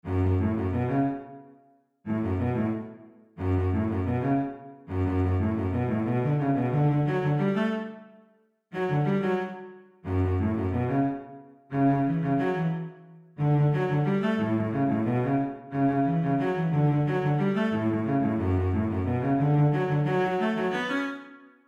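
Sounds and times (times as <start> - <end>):
cello concerto movement: 0.1 - 1.3, 2.1 - 8.0, 8.8 - 20.9.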